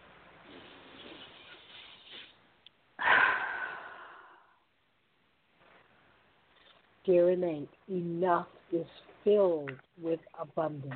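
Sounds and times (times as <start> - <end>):
deep breath: 3.0 - 4.6
speech: 7.1 - 10.9.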